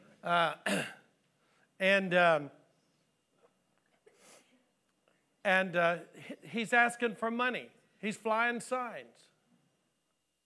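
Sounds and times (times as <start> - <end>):
speech: 0.2 - 0.9, 1.8 - 2.6, 5.4 - 9.3
person clearing throat with short voiced coughs: 0.3 - 1.1.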